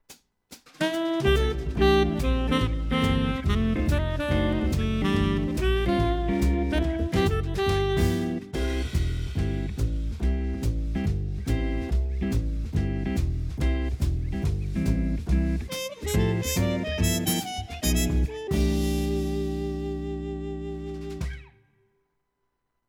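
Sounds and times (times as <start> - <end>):
keyboard arranger cool jazz club style: 0.8 - 21.5.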